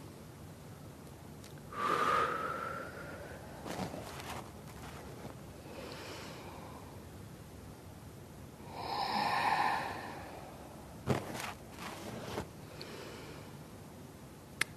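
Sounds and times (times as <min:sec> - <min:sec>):
deep inhaling and exhaling breaths during a spine-stretching exercise: 0:01.7 - 0:07.0, 0:08.6 - 0:13.6.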